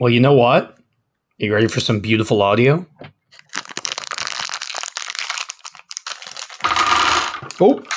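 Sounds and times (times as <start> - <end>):
speech: 0.0 - 0.8, 1.4 - 3.4, 7.6 - 7.9
plastic packaging of a dice set crinkling as it is opened: 3.3 - 7.9.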